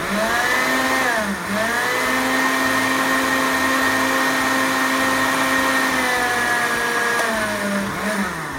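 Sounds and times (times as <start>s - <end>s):
blender whirring while mixing pudding cream: 0.0s - 8.5s.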